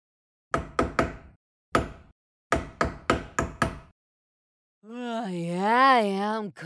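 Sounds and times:
knocking on a door: 0.5 - 3.9
person speaking: 4.8 - 6.6.

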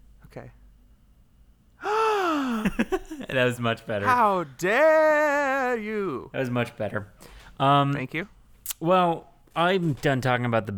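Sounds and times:
speech: 0.4 - 0.6, 2.6 - 10.7
sharp voiced gasp: 1.8 - 2.7
laughter: 2.0 - 5.8.

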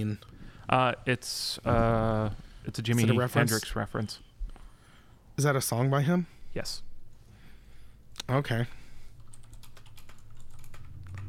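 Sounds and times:
speech: 0.0 - 4.3, 5.4 - 6.9, 8.3 - 8.8
rapid typing on a computer keyboard: 9.2 - 11.2.

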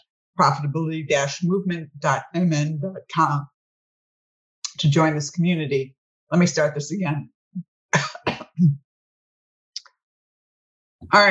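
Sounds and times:
speech: 0.4 - 3.5, 4.8 - 8.8, 11.0 - 11.2
person coughing: 8.0 - 8.7
person clearing throat: 8.0 - 8.8.

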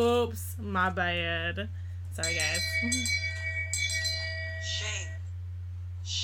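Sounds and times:
speech: 0.0 - 3.3
low steady hum: 0.0 - 6.2
hand bell used as a shame bell ringing: 2.2 - 5.2.

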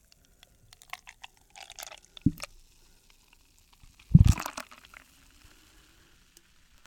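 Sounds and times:
fizzy crackles of beer: 0.0 - 6.8
small drips of beer: 0.0 - 6.8
Market Garden Brewery Cosmic Haze beer glugging into a glass: 0.7 - 5.4.

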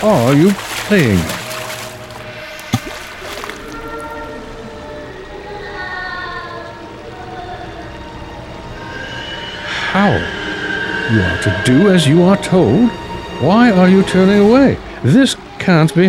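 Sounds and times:
speech: 0.0 - 1.4, 11.1 - 16.0
river water splashing and sloshing from a person struggling: 0.0 - 4.4.

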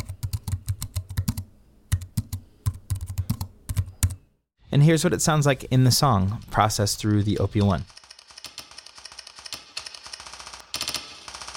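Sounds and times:
typing on a computer keyboard: 0.0 - 4.2, 7.6 - 11.5
speech: 4.8 - 8.0.

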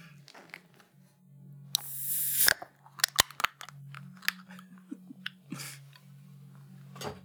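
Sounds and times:
orange juice container seal cracking open: 1.8 - 4.5
plastic snaps and clicks of orange juice containers: 1.8 - 4.6.

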